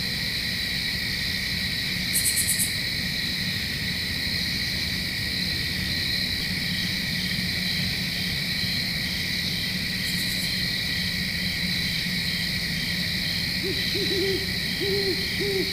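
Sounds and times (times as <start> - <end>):
crickets in a constant high chorus: 0.0 - 15.7.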